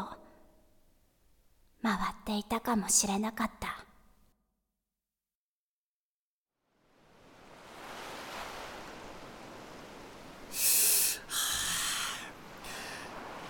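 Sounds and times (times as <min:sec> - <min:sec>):
speech: 0:01.8 - 0:03.8
ocean waves washing onto a shore at night: 0:06.7 - 0:13.4
hissing wave surges breaking: 0:10.5 - 0:13.4.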